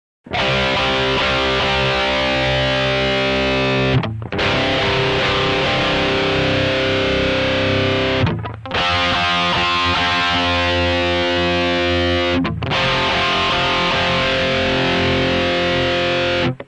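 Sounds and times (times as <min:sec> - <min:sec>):
power chord: 0:00.3 - 0:16.6.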